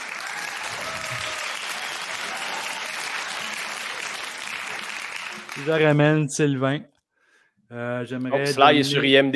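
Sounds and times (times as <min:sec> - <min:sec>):
applause: 0:00.0 - 0:06.2
speech: 0:05.6 - 0:06.9, 0:07.7 - 0:09.3.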